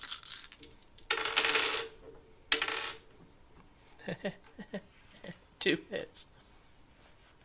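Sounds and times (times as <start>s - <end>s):
several dice clattering across a hard surface: 0.0s - 3.1s
speech: 4.1s - 5.0s, 5.6s - 6.4s.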